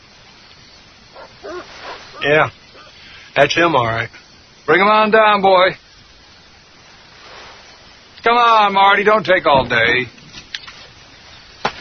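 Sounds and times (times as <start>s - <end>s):
steady broadband hiss: 0.0s - 11.7s
beagle barking: 1.1s - 3.0s
speech: 1.4s - 2.6s, 3.4s - 5.8s, 8.2s - 10.2s.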